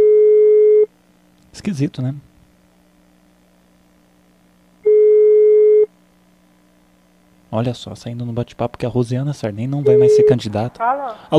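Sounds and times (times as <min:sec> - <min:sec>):
faint low hum: 0:00.0 - 0:11.3
speech: 0:01.6 - 0:02.3, 0:07.5 - 0:11.3
telephone ringback tone on an outgoing call: 0:04.8 - 0:05.9, 0:09.8 - 0:10.4.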